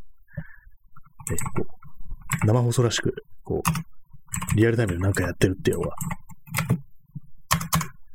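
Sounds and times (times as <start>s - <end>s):
computer keyboard typing: 1.0s - 2.6s, 3.6s - 8.0s
speech: 1.3s - 1.8s, 2.4s - 6.2s.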